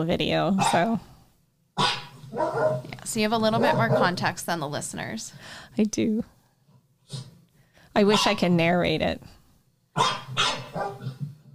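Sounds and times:
speech: 0:00.0 - 0:01.1, 0:01.8 - 0:06.4, 0:07.1 - 0:07.3, 0:08.0 - 0:09.4, 0:10.0 - 0:10.9
two dogs barking at each other: 0:01.8 - 0:02.9, 0:03.6 - 0:04.2, 0:10.0 - 0:11.2.

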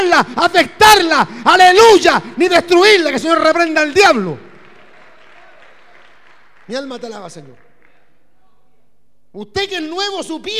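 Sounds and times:
speech: 0:00.0 - 0:04.5, 0:06.7 - 0:07.6, 0:09.3 - 0:10.5
crowd applauding: 0:03.5 - 0:08.5.

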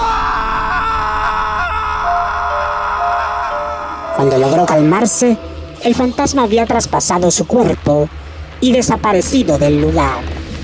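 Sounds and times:
man screaming: 0:00.0 - 0:04.2
speech: 0:04.2 - 0:10.3.

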